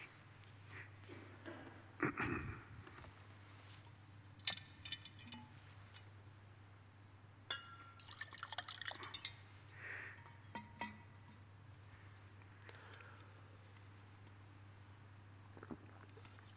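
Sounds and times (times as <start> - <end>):
quiet hum: 0.0 - 16.5
water glass clinks: 7.5 - 8.2
person sipping water from a glass: 15.5 - 16.4.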